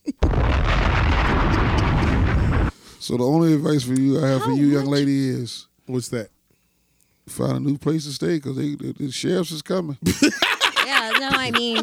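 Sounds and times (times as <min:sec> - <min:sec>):
bomb explosion: 0:00.2 - 0:02.8
speech: 0:03.1 - 0:06.4, 0:07.3 - 0:10.5, 0:11.4 - 0:11.8
laughter: 0:10.0 - 0:11.8.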